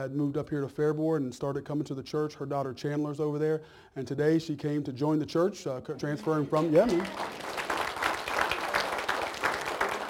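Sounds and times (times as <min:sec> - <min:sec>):
speech: 0:00.0 - 0:07.5
church congregation clapping: 0:06.0 - 0:10.0.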